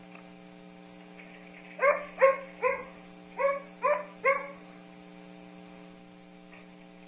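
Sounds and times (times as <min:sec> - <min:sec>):
steady low hum: 0:00.0 - 0:07.0
dog barking flatly: 0:01.8 - 0:04.6.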